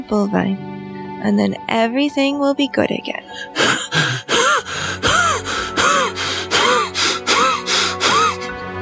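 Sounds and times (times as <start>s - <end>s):
speech: 0.0s - 4.3s
person gasping for air into a bag: 3.3s - 8.6s.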